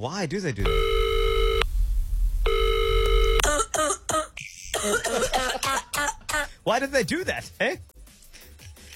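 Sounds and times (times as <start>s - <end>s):
speech: 0.0s - 1.1s, 4.8s - 7.9s
electronic phone ringing: 0.6s - 1.6s, 2.5s - 3.4s
harsh loud coughs over a telephone line: 3.4s - 6.5s.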